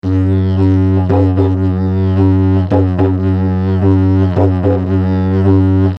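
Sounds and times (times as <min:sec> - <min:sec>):
didgeridoo melody with vibrato: 0:00.0 - 0:05.9.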